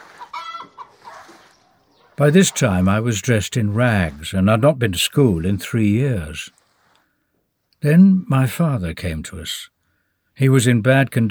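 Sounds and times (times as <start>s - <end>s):
chickens clucking: 0.0s - 6.5s
speech: 2.2s - 6.6s, 7.8s - 9.7s, 10.4s - 11.2s.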